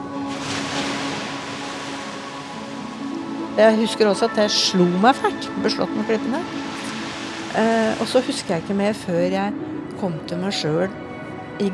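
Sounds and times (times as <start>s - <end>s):
waves breaking over a reef: 0.0s - 9.3s
speech: 3.6s - 6.8s, 7.6s - 11.0s, 11.6s - 11.7s.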